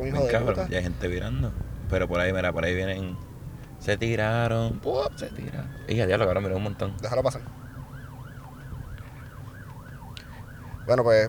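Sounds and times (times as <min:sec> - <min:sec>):
heavy rumble of road traffic: 0:00.0 - 0:11.2
police patrol car sirens yelping: 0:00.0 - 0:11.2
speech: 0:00.1 - 0:07.6, 0:10.9 - 0:11.2.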